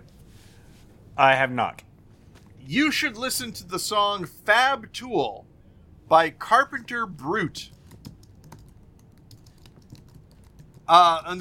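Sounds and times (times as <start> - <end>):
low hum: 0.0 - 11.3
speech: 1.2 - 1.9, 2.7 - 5.5, 6.1 - 7.8, 10.9 - 11.3
typing on a computer keyboard: 7.7 - 10.9.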